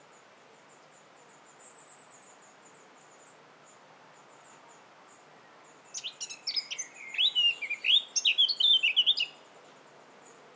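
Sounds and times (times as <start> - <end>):
Eurasian blackcap Sylvia atricapilla singing a rich fluty warble: 5.9 - 9.4.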